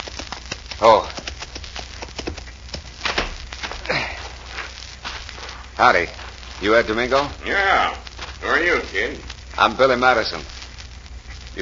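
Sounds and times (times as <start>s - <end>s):
horse hooves clip-clopping as a rider comes up to a ranch house: 0.0s - 3.8s
speech: 0.8s - 1.2s, 5.8s - 10.6s.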